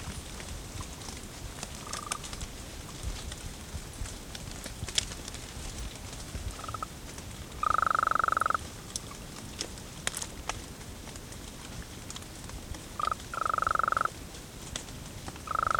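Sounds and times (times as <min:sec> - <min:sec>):
background hiss: 0:00.0 - 0:15.7
golden toad trill calls: 0:01.8 - 0:02.3, 0:06.6 - 0:06.9, 0:07.6 - 0:08.6, 0:13.0 - 0:14.1, 0:15.4 - 0:15.7.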